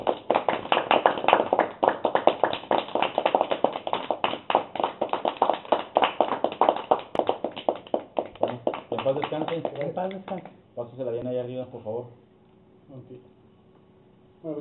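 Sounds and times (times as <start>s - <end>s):
applause for a memorial tribute: 0.0s - 10.6s
speech: 9.1s - 12.2s, 12.9s - 13.4s.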